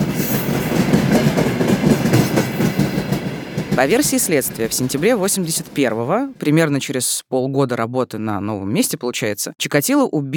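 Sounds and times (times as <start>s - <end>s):
passing train wheels clattering over rail joints: 0.0s - 6.3s
speech: 3.8s - 10.3s.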